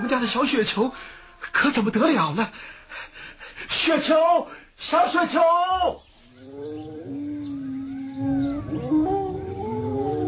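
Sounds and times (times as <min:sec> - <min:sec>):
speech: 0:00.0 - 0:07.0
several wild wolves howling on a mountain: 0:06.3 - 0:10.2.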